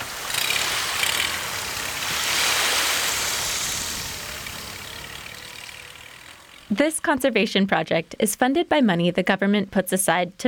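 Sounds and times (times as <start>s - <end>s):
surf and waves breaking around a boat hull: 0.0s - 7.0s
tiny boat engine droning off a bird nesting island in the United States: 0.0s - 7.6s
speech: 6.7s - 10.4s.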